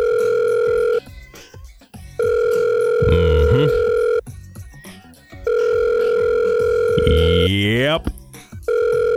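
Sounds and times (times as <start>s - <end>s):
outgoing phone call ringback tone, a steady electronic purr: 0.0s - 1.1s, 2.2s - 4.2s, 5.5s - 8.0s, 8.7s - 9.1s.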